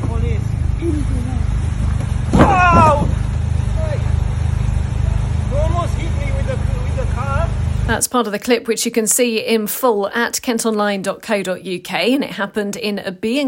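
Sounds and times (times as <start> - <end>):
car engine rumbling: 0.0 - 8.0
car driven into a cyclist, impact and commotion: 1.6 - 5.0
people shouting: 2.3 - 4.0
speech: 8.1 - 13.4.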